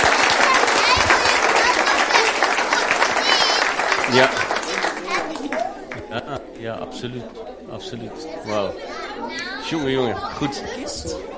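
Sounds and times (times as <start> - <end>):
audience applause: 0.0 - 6.2
laughter: 0.0 - 8.5
voices in the audience crowd: 0.0 - 11.3
speech: 4.1 - 4.4, 6.2 - 11.3.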